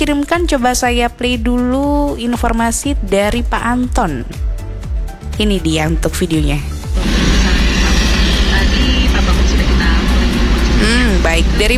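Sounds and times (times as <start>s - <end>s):
speech: 0.1s - 4.5s, 5.4s - 7.4s, 10.8s - 11.7s
dense road traffic flowing past: 6.9s - 11.7s.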